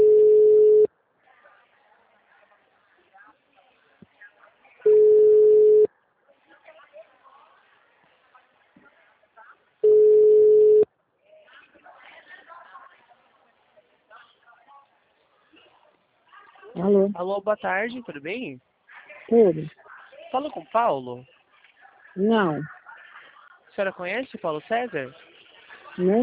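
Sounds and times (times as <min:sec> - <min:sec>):
ringback tone of an outgoing telephone call: 0:00.0 - 0:00.9, 0:04.9 - 0:05.9, 0:09.8 - 0:10.8
faint sounds: 0:00.0 - 0:26.2
speech: 0:17.2 - 0:18.7, 0:19.3 - 0:21.3, 0:22.2 - 0:22.8, 0:23.8 - 0:25.2, 0:26.0 - 0:26.2.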